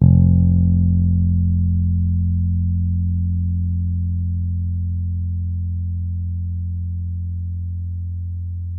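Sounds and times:
electric bass long F note: 0.0 - 8.7.

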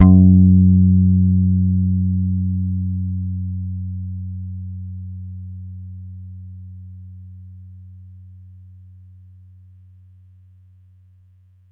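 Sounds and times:
electric bass one-shot in F sharp: 0.0 - 7.6.

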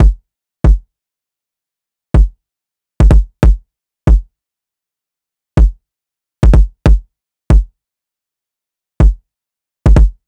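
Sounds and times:
kick drum loops at 140 BPM: 0.0 - 0.8, 2.2 - 2.4, 3.0 - 4.3, 5.6 - 5.8, 6.4 - 7.7, 9.0 - 9.2, 9.9 - 10.2.

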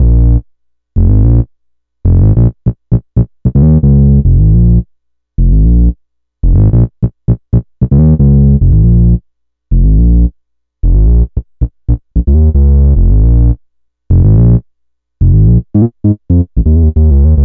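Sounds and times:
synth bass loop in B flat: 0.0 - 0.4, 1.0 - 4.8, 5.4 - 14.6, 15.2 - 17.4.

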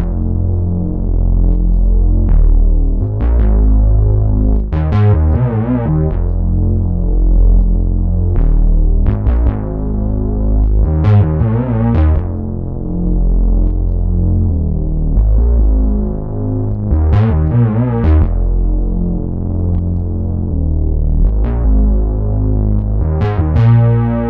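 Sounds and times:
synth bass loop in F minor: 0.0 - 24.2.

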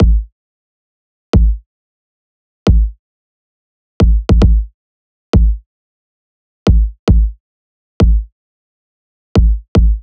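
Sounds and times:
pop kick drum loop: 0.0 - 0.3, 1.4 - 1.6, 2.7 - 3.0, 4.0 - 4.7, 5.4 - 5.6, 6.7 - 7.4, 8.0 - 8.3, 9.4 - 10.0.

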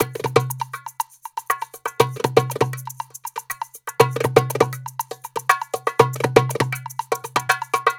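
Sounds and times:
percussion groove at tempo 120: 0.0 - 7.9.

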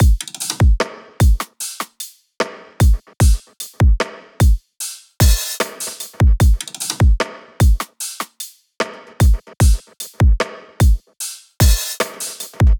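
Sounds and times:
full pop drum loop: 0.0 - 2.0, 2.8 - 4.6, 5.2 - 8.4, 9.1 - 11.0, 11.6 - 12.7.

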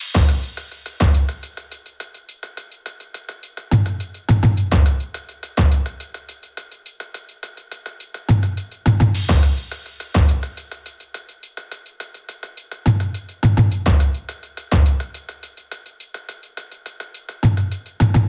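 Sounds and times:
percussion drum loop: 0.0 - 18.2.

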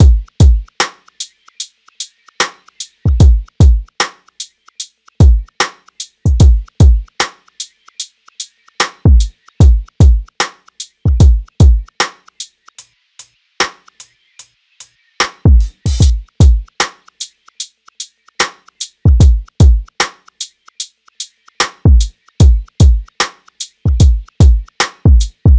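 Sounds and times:
full drum loop: 0.0 - 12.5, 15.2 - 25.5.

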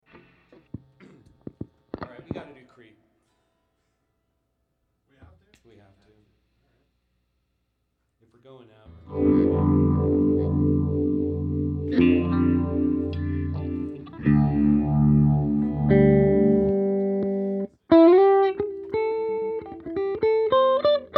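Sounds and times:
guitars mix: 8.9 - 21.1.

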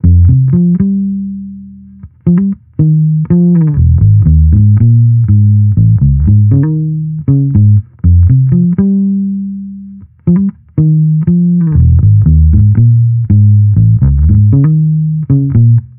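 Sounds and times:
amped electric bass loop in F minor: 0.0 - 15.9.

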